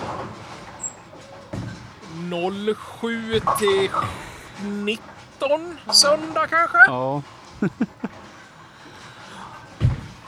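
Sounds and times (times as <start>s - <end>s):
bowling balls and pins crashing in a bowling alley: 0.0s - 10.2s
laughter: 2.0s - 10.2s
steady bowling hall ambience: 2.0s - 10.2s
speech: 2.2s - 8.1s.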